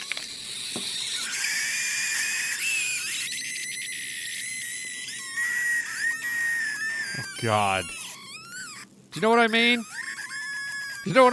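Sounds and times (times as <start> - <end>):
gas escaping through the lid on a soda cup squealing: 0.0 - 8.8
speech: 7.4 - 8.0, 9.2 - 10.0, 11.0 - 11.3.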